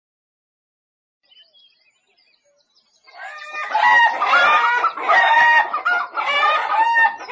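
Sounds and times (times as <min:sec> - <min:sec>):
several chickens clucking and squawking on a farm: 0:03.1 - 0:07.3.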